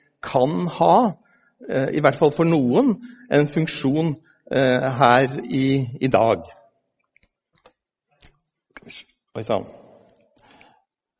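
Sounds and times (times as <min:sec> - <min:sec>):
speech: 0:00.3 - 0:06.6, 0:08.8 - 0:09.8
computer mouse clicks: 0:07.0 - 0:08.4.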